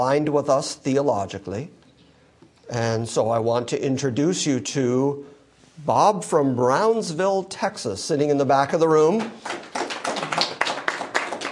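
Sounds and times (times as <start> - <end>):
speech: 0.0 - 1.8, 2.7 - 9.6
smattering of applause from an audience seated in a room: 9.3 - 11.4.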